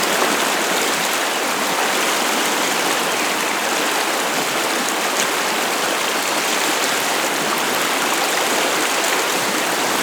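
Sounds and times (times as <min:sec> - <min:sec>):
large waterfall: 0:00.0 - 0:10.0.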